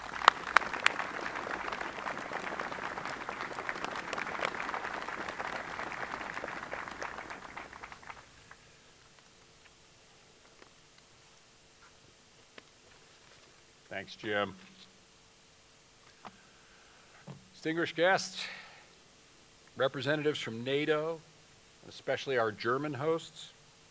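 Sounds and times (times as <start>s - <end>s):
audience applauding: 0.0s - 8.6s
speech: 14.0s - 14.6s, 17.6s - 18.6s, 19.8s - 23.6s.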